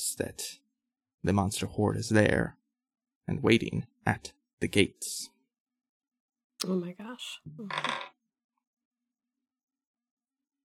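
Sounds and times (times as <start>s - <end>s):
speech: 0.0s - 0.6s, 1.2s - 2.6s, 3.2s - 5.4s, 6.6s - 8.1s
dice rolling on a table: 7.7s - 8.2s.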